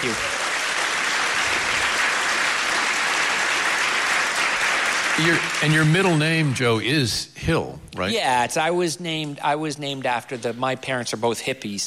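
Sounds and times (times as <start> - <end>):
speech: 0.0 - 0.4, 5.2 - 11.8
audience applause: 0.0 - 6.6.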